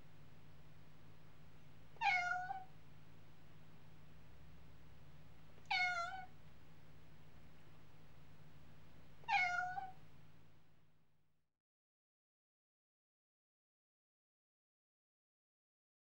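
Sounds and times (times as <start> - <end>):
domestic cat meowing: 2.0 - 2.7, 5.6 - 6.3, 9.2 - 10.0.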